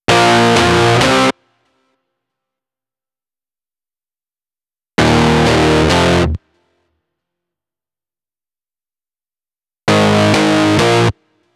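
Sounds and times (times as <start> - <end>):
distorted guitar: 0.1 - 1.3, 5.0 - 6.4, 9.9 - 11.2.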